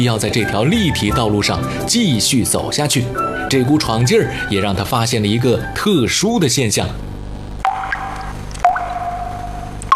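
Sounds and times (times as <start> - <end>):
speech: 0.0 - 7.2
excess water and fertilizer solution dripping from felt under raised strawberry beds: 7.6 - 9.9.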